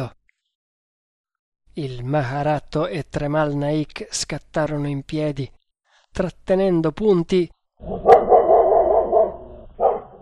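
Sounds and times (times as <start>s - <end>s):
speech: 1.8s - 8.1s
dog barking furiously: 7.8s - 10.1s.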